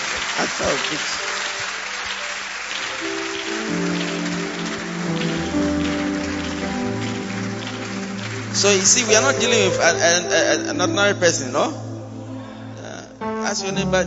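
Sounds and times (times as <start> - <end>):
crowd clapping: 0.0 - 10.4
speech: 0.4 - 1.4, 8.6 - 11.9, 13.5 - 14.0.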